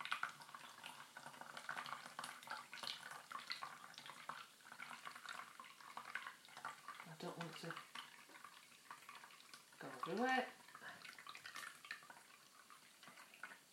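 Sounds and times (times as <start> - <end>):
crackling bubbles of fizzy drink: 0.0 - 13.7
fizzy drink being poured slowly: 0.0 - 13.7
speech: 7.2 - 7.9, 9.8 - 10.6.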